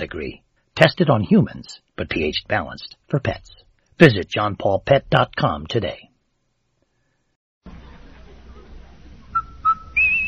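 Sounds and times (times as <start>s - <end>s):
speech: 0.0s - 6.1s
hissy crackling background: 0.0s - 10.2s
three-note whistle in a radio soap commercial: 9.3s - 10.2s.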